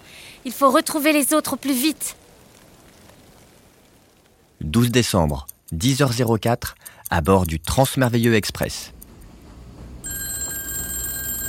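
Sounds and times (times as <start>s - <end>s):
low hiss: 0.0s - 10.0s
speech: 0.4s - 2.2s, 4.6s - 9.0s
telephone ringing in a secret room of a library: 10.0s - 11.4s.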